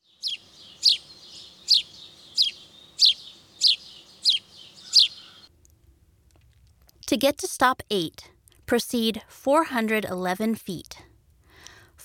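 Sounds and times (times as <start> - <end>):
house sparrow chirping: 0.0 - 5.5
speech: 7.1 - 11.0.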